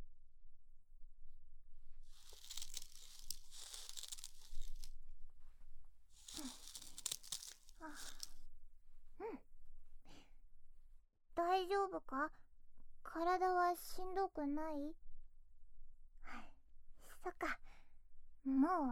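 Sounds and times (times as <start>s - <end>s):
newspaper crinkling as someone sits on it: 2.2s - 4.9s, 6.2s - 8.3s
speech: 11.6s - 12.4s, 13.2s - 15.0s, 17.3s - 17.6s, 18.5s - 18.9s.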